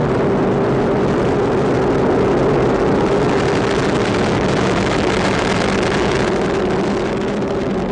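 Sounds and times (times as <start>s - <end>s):
rocket booster engines roaring during launch: 0.0s - 7.8s.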